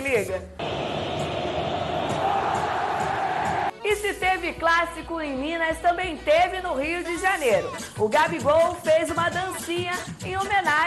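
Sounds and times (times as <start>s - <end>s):
speech: 0.2s - 0.6s, 4.0s - 10.8s
football stadium crowd jeering a goalkeeper's goal kick: 0.6s - 3.7s.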